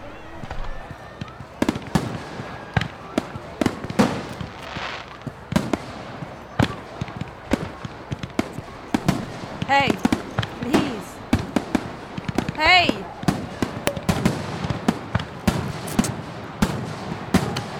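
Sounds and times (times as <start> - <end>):
faint voices: 0.0 - 16.2
fireworks bursting in sharp bangs and cracks: 1.6 - 17.7.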